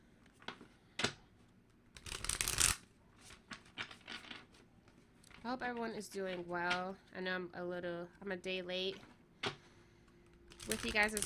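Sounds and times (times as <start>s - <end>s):
deck of African tarot cards being shuffled: 1.9s - 7.0s, 10.3s - 11.2s
speech: 5.4s - 9.1s, 10.7s - 11.2s.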